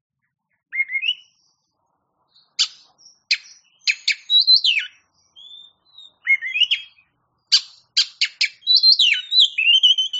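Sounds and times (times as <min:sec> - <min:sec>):
Oriental magpie-robin singing a rising whistled phrase: 0:00.2 - 0:01.7, 0:02.3 - 0:10.1
Oriental magpie-robin thin high whistle: 0:02.6 - 0:10.1.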